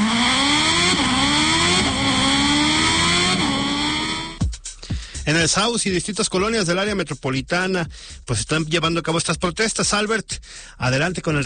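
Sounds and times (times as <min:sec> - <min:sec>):
motorcycle engine accelerating through gear shifts: 0:00.0 - 0:04.4
speech: 0:05.3 - 0:11.4.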